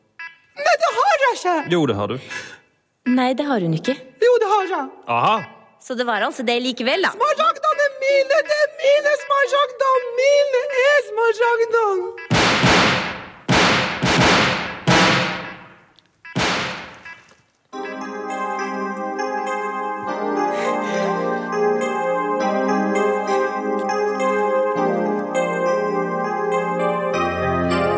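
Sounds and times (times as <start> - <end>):
speech: 1.3 - 12.3
gunshot sound effects in a radio drama: 12.3 - 15.8, 16.4 - 17.1
sustained layered musical chord: 17.8 - 27.9.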